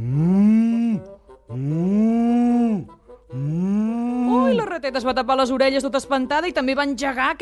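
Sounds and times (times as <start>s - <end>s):
voice imitating the moo of a big strong bull: 0.0s - 4.6s
speech: 4.5s - 7.4s.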